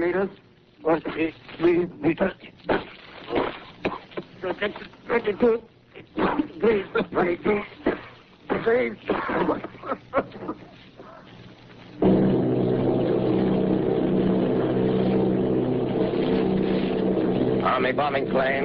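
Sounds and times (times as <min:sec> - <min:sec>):
speech: 0:00.0 - 0:03.4, 0:04.4 - 0:07.8, 0:08.6 - 0:10.5, 0:17.7 - 0:18.6
Army bombing plane engines droning off Bayonne New Jersey: 0:12.0 - 0:18.6.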